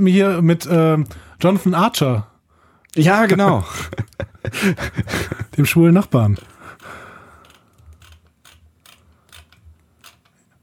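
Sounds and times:
speech: 0.0s - 2.3s, 2.9s - 7.0s
laughter: 3.2s - 5.8s
mouse wheel scrolling clicks: 7.5s - 10.4s.

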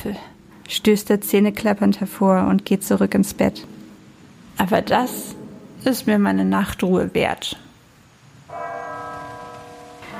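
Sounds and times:
speech: 0.0s - 3.8s, 4.6s - 7.6s
church tower clock bell tolling: 8.5s - 10.1s.

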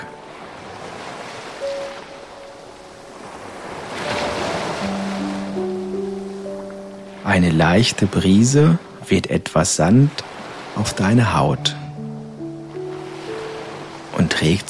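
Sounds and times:
soft sustained musical tones humming faintly: 0.0s - 0.8s, 1.6s - 14.6s
gentle ocean waves washing onto a beach: 0.0s - 14.6s
speech: 7.3s - 11.8s, 14.4s - 14.6s.

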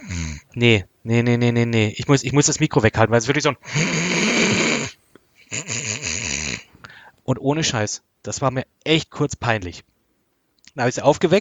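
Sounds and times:
voice imitating loud snoring: 0.0s - 0.6s, 3.7s - 6.7s
speech: 0.6s - 4.1s, 7.3s - 9.9s, 10.8s - 11.4s.

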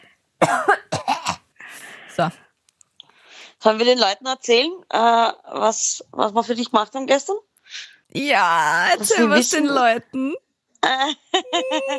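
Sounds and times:
person coughing: 0.4s - 1.4s
speech: 2.2s - 2.4s, 3.6s - 11.9s
laughter: 9.0s - 10.0s, 10.9s - 11.9s.

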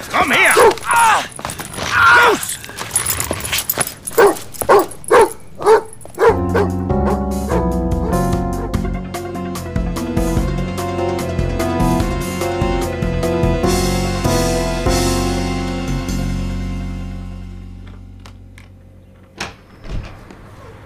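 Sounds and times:
speech: 0.1s - 1.3s
dog barking sharply: 0.4s - 0.9s, 4.1s - 8.8s
music: 6.2s - 19.3s.

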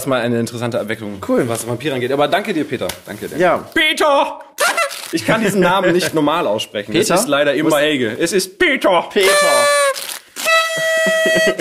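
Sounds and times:
speech: 0.0s - 4.5s, 5.1s - 10.1s, 11.2s - 11.5s
toy horn being blown: 4.6s - 5.1s, 9.2s - 11.5s
laughter: 4.6s - 6.3s, 10.8s - 11.5s.

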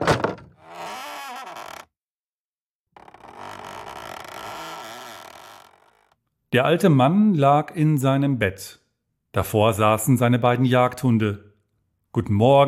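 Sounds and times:
bedroom door creaking open: 0.0s - 1.9s, 3.0s - 6.2s
speech: 6.5s - 11.5s, 12.2s - 12.6s.

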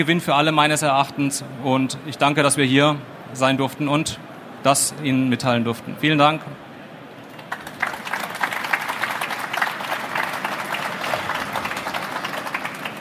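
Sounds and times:
speech: 0.0s - 6.7s
audience applause for presenters after their talk: 7.3s - 12.9s.

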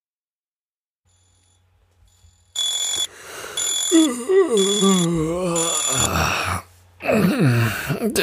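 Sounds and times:
alarm clock ringing in shrill bursts: 1.1s - 6.5s
speech: 3.9s - 6.4s, 7.0s - 8.2s
person groaning and moaning: 3.9s - 8.2s.

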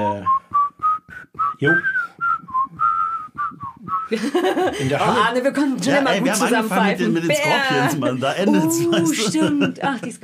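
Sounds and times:
speech: 0.0s - 0.4s, 1.6s - 1.9s, 4.1s - 10.2s
person whistling a lively TV series theme tune: 0.0s - 4.1s
laughter: 4.1s - 10.2s.

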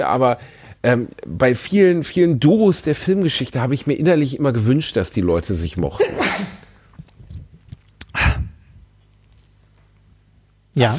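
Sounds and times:
speech: 0.0s - 6.6s, 10.8s - 10.9s
muffled off-mic sneeze: 6.0s - 6.7s.

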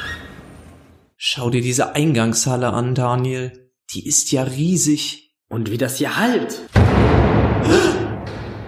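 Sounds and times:
speech: 1.3s - 8.0s
heavy door slamming shut in a huge entrance hall: 6.7s - 8.6s.

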